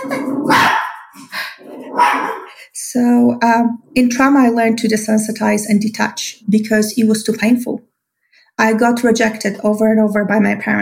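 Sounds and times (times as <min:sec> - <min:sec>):
pet dog barking: 0:00.0 - 0:01.2, 0:01.9 - 0:02.6
speech: 0:02.9 - 0:07.9, 0:08.6 - 0:10.8.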